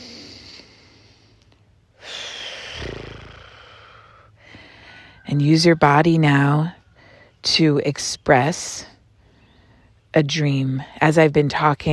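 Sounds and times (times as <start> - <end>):
slow deep breath in and out: 0.0 - 5.3, 6.8 - 7.4
speech: 5.3 - 6.8, 7.4 - 8.9, 10.1 - 11.9.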